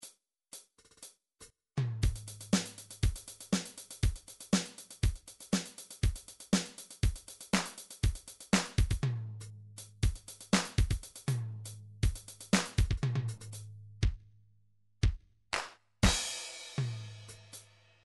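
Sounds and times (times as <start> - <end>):
MIDI dance drums: 1.8 - 9.2, 9.9 - 14.2, 15.0 - 17.4.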